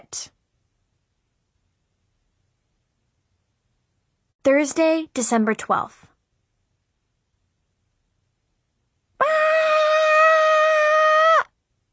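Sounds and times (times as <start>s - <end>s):
speech: 0.1s - 0.4s, 4.4s - 6.1s
person screaming: 9.2s - 11.5s.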